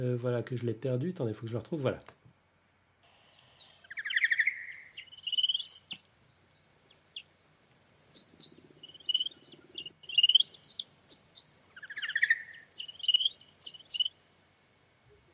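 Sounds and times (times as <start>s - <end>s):
speech: 0.0s - 2.2s
male bat mating call to a female slowed to one-tenth speed: 3.0s - 14.4s.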